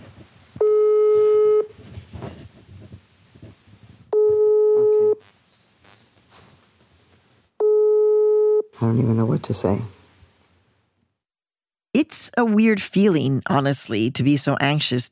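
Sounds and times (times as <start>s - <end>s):
phone line ringing on an outgoing call: 0.6s - 1.7s, 4.2s - 5.2s, 7.6s - 8.7s
speech: 9.4s - 10.0s, 12.4s - 15.1s.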